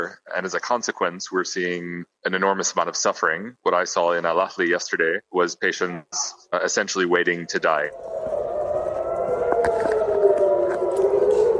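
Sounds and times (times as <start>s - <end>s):
speech: 0.0s - 8.2s
air raid siren wailing in southern and central Israel during rocket fire: 7.2s - 11.5s.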